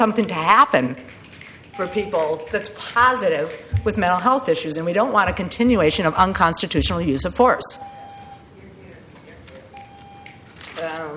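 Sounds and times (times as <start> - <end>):
speech: 0.0 - 1.2, 1.8 - 7.9
electronic speaking-time timer alarm beeping at a public meeting: 1.7 - 2.7, 3.7 - 4.5, 5.1 - 8.5, 9.7 - 10.4.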